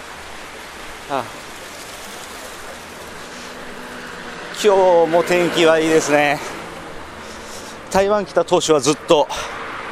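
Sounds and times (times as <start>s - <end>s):
water fountain splashing: 0.0s - 7.8s
speech: 1.1s - 1.5s, 4.6s - 6.5s, 7.9s - 9.6s.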